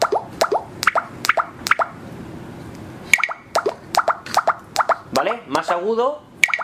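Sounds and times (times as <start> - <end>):
short bright high-pitched electronic app cue blips: 0.0 - 1.9, 3.1 - 5.8, 6.4 - 6.6
speech: 5.3 - 6.3.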